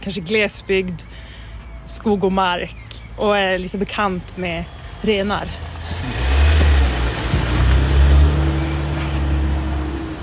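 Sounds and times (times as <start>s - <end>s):
speech: 0.0s - 6.1s
car driving away: 5.6s - 10.2s.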